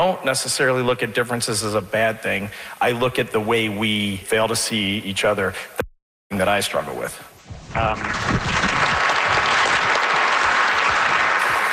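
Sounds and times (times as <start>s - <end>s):
speech: 0.0s - 8.7s
audience applause: 7.8s - 11.7s.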